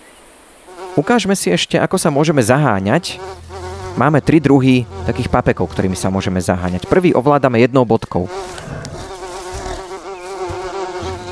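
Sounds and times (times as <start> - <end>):
speech: 0.7 - 3.4, 4.0 - 8.7
bees buzzing in an audio game: 2.4 - 7.2, 8.2 - 11.3.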